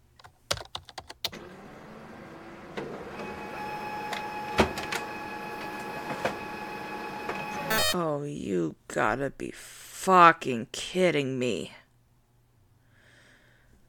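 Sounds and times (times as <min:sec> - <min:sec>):
keyboard clicks: 0:00.2 - 0:01.3
printer printing reports: 0:01.4 - 0:07.7
printer clunks as pages feed through: 0:02.7 - 0:07.6
speech: 0:07.9 - 0:11.8.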